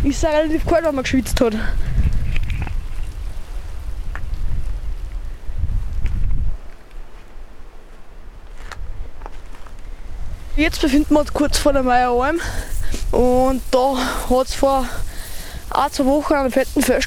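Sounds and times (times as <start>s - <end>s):
speech: 0.0s - 1.9s, 10.6s - 15.1s, 15.7s - 17.0s
heavy low wind gusts buffeting the microphone: 0.0s - 6.8s, 8.7s - 17.0s
wind rushing through a mountain valley: 12.1s - 17.0s.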